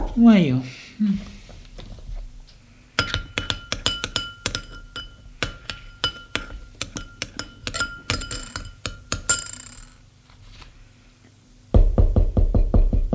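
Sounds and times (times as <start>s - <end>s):
speech: 0.2s - 1.3s
light clinks of glass and tableware rattling: 3.0s - 10.0s
loud rapid knocking on a door: 11.8s - 13.1s.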